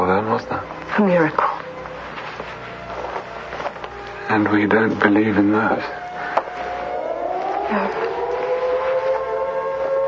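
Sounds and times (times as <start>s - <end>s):
dense noise: 0.0s - 10.0s
speech: 0.2s - 1.4s, 4.3s - 6.0s
siren wailing: 5.7s - 10.0s.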